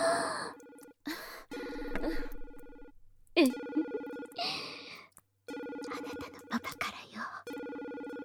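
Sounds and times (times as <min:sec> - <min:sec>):
breathy sighs and gasps: 0:00.0 - 0:02.4, 0:04.4 - 0:05.2
phone ringing with electronic tones: 0:01.5 - 0:04.8, 0:05.5 - 0:06.9, 0:07.5 - 0:08.2
speech: 0:03.4 - 0:04.6.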